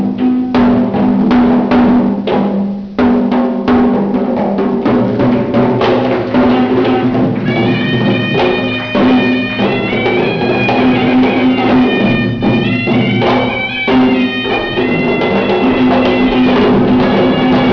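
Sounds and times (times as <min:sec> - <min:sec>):
drumming: 0:00.0 - 0:17.7.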